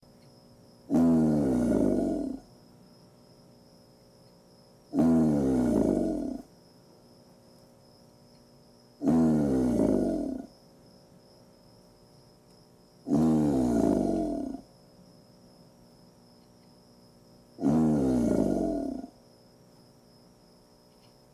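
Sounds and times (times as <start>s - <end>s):
alligator bellowing: 0.9s - 2.5s, 4.9s - 6.5s, 9.0s - 10.5s, 13.0s - 14.7s, 17.6s - 19.2s.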